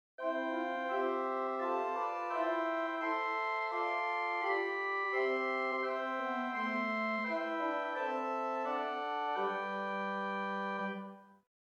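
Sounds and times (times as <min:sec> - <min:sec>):
Hauptwerk organ Swell Salicet 4 stop of St Annes Moseley: 0:00.2 - 0:11.2.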